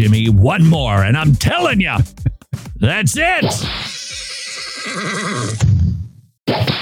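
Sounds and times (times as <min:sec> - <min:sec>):
speech: 0:00.0 - 0:02.2, 0:02.8 - 0:04.0, 0:04.9 - 0:05.7, 0:06.5 - 0:06.8
horse whinnying and snorting: 0:03.6 - 0:05.8.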